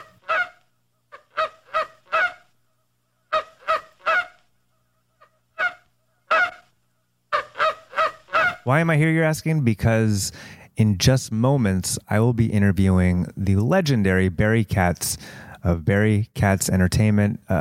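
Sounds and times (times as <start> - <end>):
condor honking bird calls sound effect: 0.0 - 2.6, 3.2 - 8.7
speech: 8.7 - 17.6.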